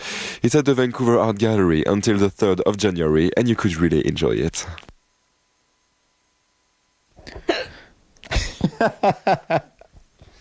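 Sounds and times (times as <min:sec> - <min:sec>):
speech: 0:00.4 - 0:04.9, 0:08.8 - 0:09.7
person hiccupping: 0:07.2 - 0:07.9
laughter: 0:08.3 - 0:09.9.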